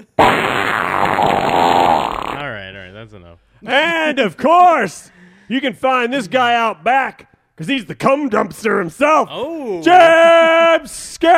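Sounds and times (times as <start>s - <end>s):
fart sound effect from a soundboard: 0.0s - 2.5s
speech: 3.1s - 11.3s.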